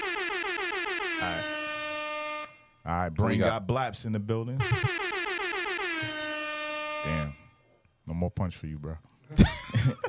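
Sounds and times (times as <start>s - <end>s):
air horn blasts: 0.0s - 3.0s, 4.6s - 7.6s
speech: 1.2s - 1.6s, 2.8s - 5.0s, 8.2s - 10.0s
laughter: 9.3s - 10.0s.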